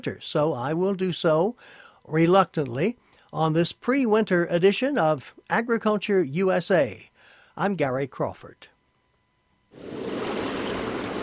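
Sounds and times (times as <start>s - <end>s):
speech: 0.0s - 8.7s, 9.7s - 9.9s
ocean waves in the equatorial Pacific: 9.8s - 11.2s.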